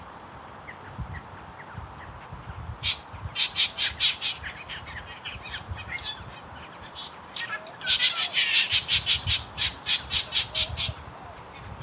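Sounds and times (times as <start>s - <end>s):
low rumbling background noise: 0.0s - 11.8s
Spangled drongo harsh squawking calls: 2.8s - 11.7s.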